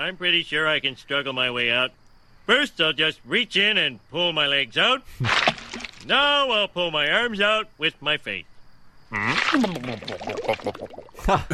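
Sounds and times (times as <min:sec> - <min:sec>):
speech: 0:00.0 - 0:08.5, 0:09.1 - 0:11.5
voice imitating thick tar bubbling as a cartoon character sinks: 0:09.1 - 0:11.4.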